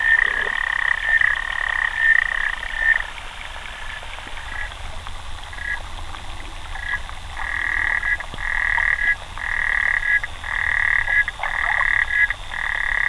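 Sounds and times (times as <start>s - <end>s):
Xenopus frog trilling calls: 0.0s - 3.1s, 6.8s - 13.0s.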